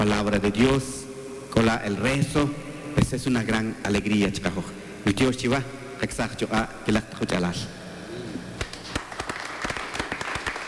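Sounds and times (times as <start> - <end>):
speech: 0.0 - 7.8
audience applause: 8.6 - 10.6.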